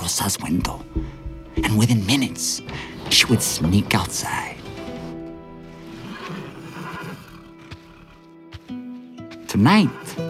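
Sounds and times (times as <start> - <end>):
speech: 0.1 - 4.6, 9.6 - 10.2
horse snorting: 0.8 - 10.2
horse neighing in a stable: 2.6 - 8.3, 9.4 - 10.2.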